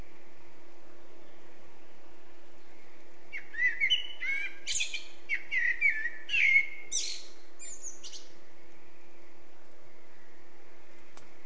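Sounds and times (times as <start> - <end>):
faint steady hum: 0.0 - 11.4
Eurasian blackbird Turdus merula singing mellow fluty phrases: 2.6 - 8.4.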